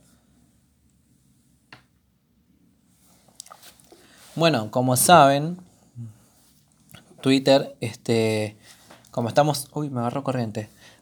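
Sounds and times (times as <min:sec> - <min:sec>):
person sipping water: 0:03.3 - 0:04.2
slurping swallowing mouth sounds: 0:03.4 - 0:04.0
speech: 0:04.4 - 0:06.1, 0:07.2 - 0:10.8.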